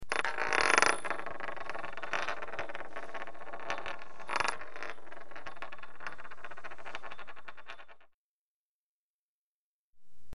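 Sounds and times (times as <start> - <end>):
coin spinning on floor: 0.0 - 8.1.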